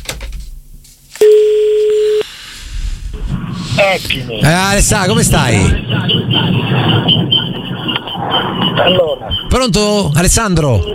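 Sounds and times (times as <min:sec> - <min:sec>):
electronic telephone call connecting tone: 0:01.2 - 0:02.3
speech: 0:03.9 - 0:10.9.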